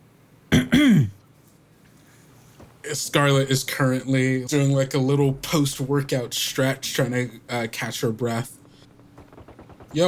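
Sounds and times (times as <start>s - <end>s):
woman clearing her throat: 0.5s - 1.2s
speech: 3.0s - 8.6s.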